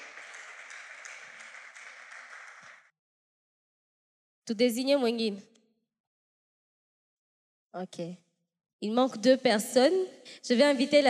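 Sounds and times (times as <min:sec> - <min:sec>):
audience applause and cheering: 0:00.0 - 0:02.9
speech: 0:04.5 - 0:05.5, 0:07.8 - 0:08.2, 0:08.8 - 0:11.0.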